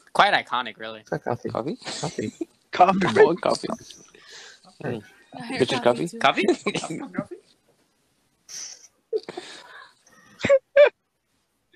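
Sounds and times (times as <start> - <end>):
speech: 0.2 - 7.3
voice imitating seagull squawks: 1.1 - 3.8
laughter: 1.1 - 3.9, 5.6 - 7.3
breathy sounds: 2.9 - 5.5, 8.5 - 10.4.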